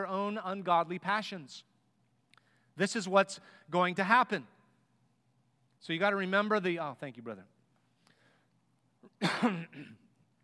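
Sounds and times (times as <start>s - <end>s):
speech: 0.0s - 1.7s, 2.8s - 4.6s, 5.8s - 7.5s, 9.2s - 10.0s
harsh cough: 9.0s - 10.2s
rough throat-clearing rasp: 9.0s - 10.2s.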